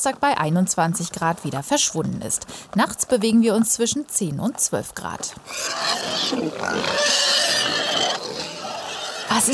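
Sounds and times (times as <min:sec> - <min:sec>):
speech: 0:00.0 - 0:08.5, 0:09.3 - 0:09.5
pigs grunting and squealing in a pigsty with feed: 0:05.4 - 0:09.5.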